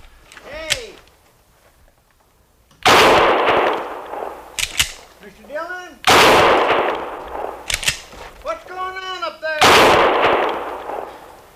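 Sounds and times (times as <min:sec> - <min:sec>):
single gunshot with a rumbling tail: 0:02.8 - 0:05.0, 0:06.1 - 0:08.1, 0:09.6 - 0:11.3.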